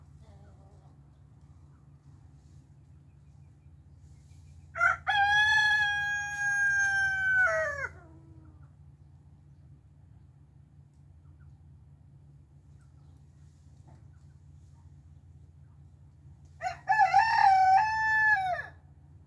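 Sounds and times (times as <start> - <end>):
domestic roosters crowing, including a young black silkie: 4.8 - 8.4, 16.6 - 18.8.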